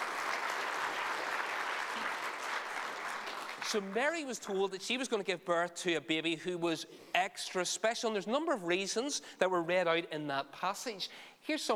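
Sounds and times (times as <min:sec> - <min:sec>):
audience clapping for readers: 0:00.0 - 0:04.0
speech: 0:03.7 - 0:11.7.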